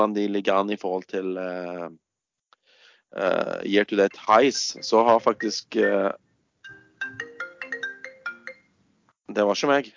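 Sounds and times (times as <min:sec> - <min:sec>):
speech: 0:00.0 - 0:02.0, 0:03.1 - 0:06.2, 0:09.3 - 0:09.9
phone ringtone of bright electronic tones: 0:04.1 - 0:08.8.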